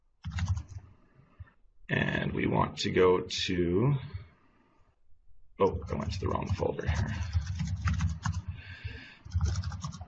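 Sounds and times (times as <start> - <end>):
typing on a computer keyboard: 0.2 - 0.9, 5.8 - 8.6, 9.2 - 10.0
speech: 1.9 - 4.2, 5.6 - 7.7.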